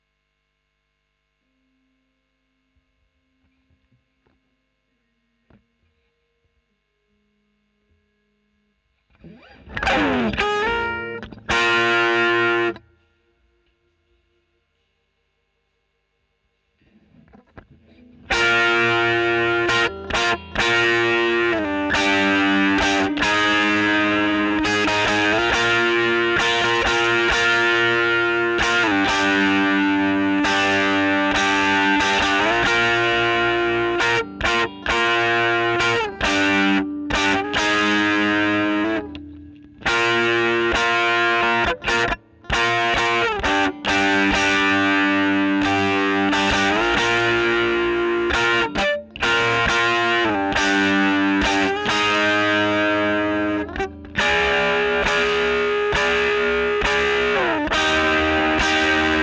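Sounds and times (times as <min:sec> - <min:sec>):
overdriven electric guitar recorded with a Royer microphone: 0:09.1 - 0:13.7, 0:16.8 - 0:59.2.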